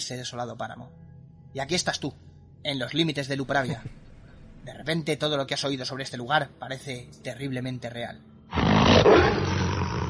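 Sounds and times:
speech: 0.1s - 4.0s, 4.6s - 9.3s
wolf growling: 8.5s - 10.0s.

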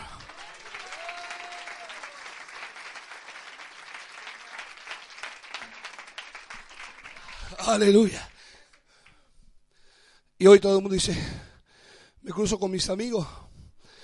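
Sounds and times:
large congregation applauding: 0.0s - 8.5s
speech: 7.6s - 8.3s, 10.4s - 11.4s, 12.2s - 13.4s.

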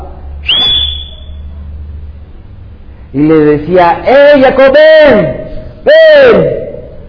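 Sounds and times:
person whistling loudly to call someone: 0.4s - 1.5s
speech: 3.1s - 6.6s.

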